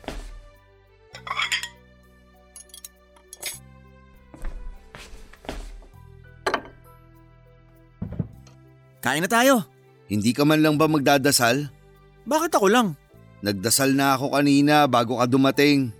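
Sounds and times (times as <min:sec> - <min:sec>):
ceramic dishes clinking and knocking: 0:01.2 - 0:01.8, 0:06.5 - 0:06.8
speech: 0:09.0 - 0:15.9.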